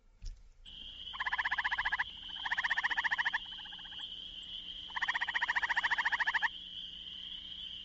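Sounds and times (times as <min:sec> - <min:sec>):
gray tree frog giving loud musical trills: 0:00.7 - 0:06.6
steady high-pitched chorus of spring peepers: 0:00.7 - 0:07.8.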